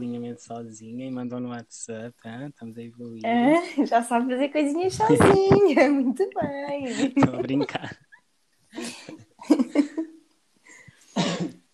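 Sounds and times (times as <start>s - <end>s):
speech: 0.0s - 8.1s
laughter: 6.7s - 8.0s
person coughing: 6.9s - 7.9s, 11.2s - 11.6s.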